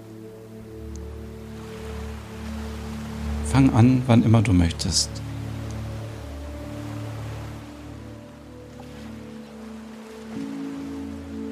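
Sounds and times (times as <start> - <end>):
low humming drone: 0.0 - 11.5
ocean surf washing onto a beach at sunset: 0.0 - 11.5
speech: 3.5 - 5.2.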